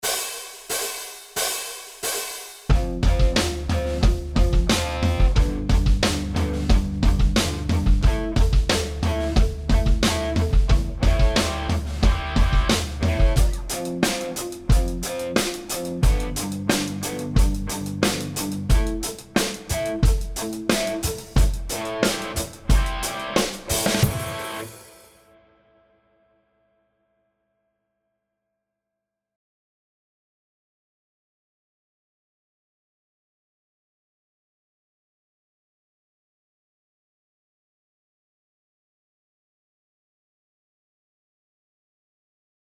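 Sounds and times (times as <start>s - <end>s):
backing track in F E Am: 0.0s - 25.2s
slide guitar in octaves: 7.4s - 25.0s.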